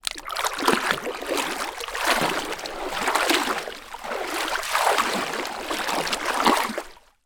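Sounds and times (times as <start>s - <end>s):
gentle water movements in a swimming pool: 0.0s - 7.2s.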